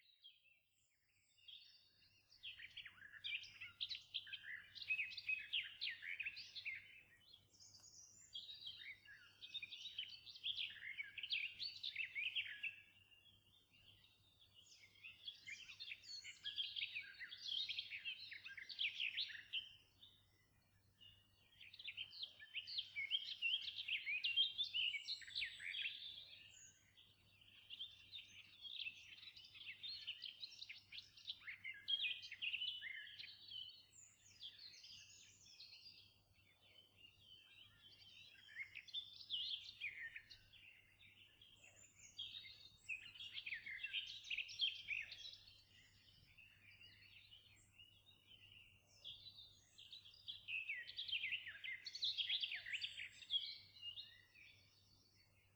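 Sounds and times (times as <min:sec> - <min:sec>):
birdsong: 0:00.0 - 0:55.5.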